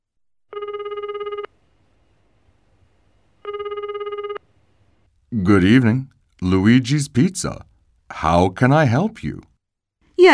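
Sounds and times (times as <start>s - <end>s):
phone ringback tone while calling a pizza restaurant: 0.5s - 1.6s, 3.4s - 4.5s
quiet hum: 0.5s - 10.3s
speech: 5.4s - 9.5s.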